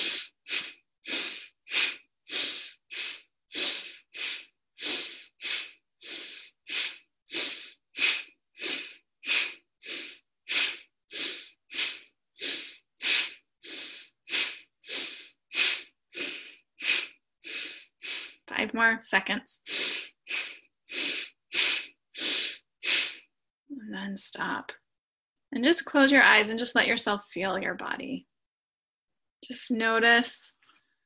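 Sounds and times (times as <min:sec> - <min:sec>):
deep forceful belly breathing in and out through the nose: 0:00.0 - 0:18.5, 0:19.6 - 0:23.3
speech: 0:18.8 - 0:19.7, 0:24.0 - 0:24.8, 0:25.5 - 0:28.3, 0:29.5 - 0:30.6.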